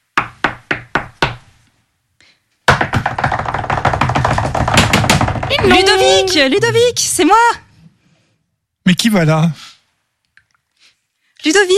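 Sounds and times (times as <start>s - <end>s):
rapid hard knocking on a door: 0.2s - 1.4s, 2.7s - 5.9s
speech: 5.7s - 7.6s, 8.8s - 9.7s, 11.4s - 11.7s.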